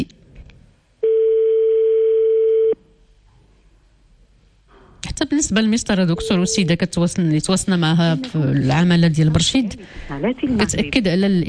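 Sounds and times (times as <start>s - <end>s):
faint noise: 0.0s - 11.4s
telephone ringback tone: 1.0s - 2.8s
speech: 5.5s - 11.4s.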